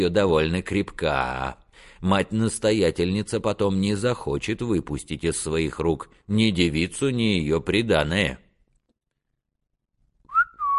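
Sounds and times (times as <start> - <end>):
speech: 0.0 - 8.4
man whistling: 10.3 - 10.7.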